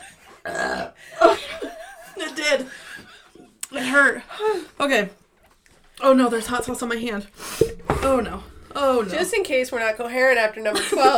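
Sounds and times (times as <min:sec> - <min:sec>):
loud croaky burp: 0:00.4 - 0:01.0
speech: 0:00.4 - 0:01.4, 0:02.4 - 0:02.8, 0:03.8 - 0:05.2, 0:06.0 - 0:07.4, 0:08.0 - 0:11.1.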